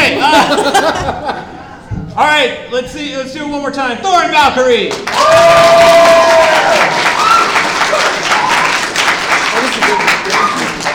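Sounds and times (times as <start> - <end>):
laughter: 0.0 - 1.8
speech: 2.4 - 7.0
crowd applauding: 4.9 - 10.9
people cheering: 5.0 - 10.9.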